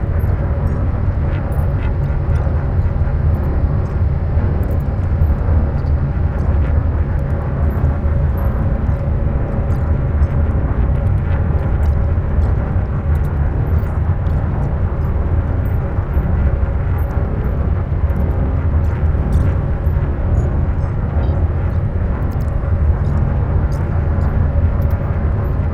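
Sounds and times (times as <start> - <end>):
science fiction ship hum: 0.0 - 25.7.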